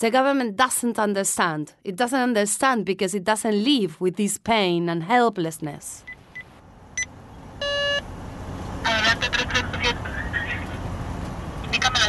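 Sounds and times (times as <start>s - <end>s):
speech: 0.0s - 6.1s
police pickup truck engine and road rumble on a beach road: 6.1s - 12.0s
brief horn-like beep: 7.6s - 8.0s.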